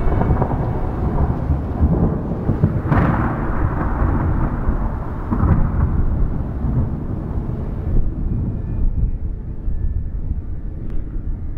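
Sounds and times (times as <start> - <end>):
steady rain pouring down: 0.0 - 8.1
low rumble of thunder with sharper cracks: 0.0 - 11.5.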